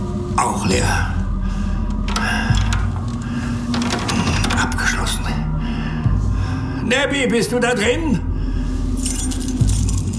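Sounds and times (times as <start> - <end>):
low steady hum: 0.0 - 10.1
speech: 0.4 - 1.2, 6.9 - 8.3
bunch of keys jangling while searching for the right key: 9.0 - 10.1.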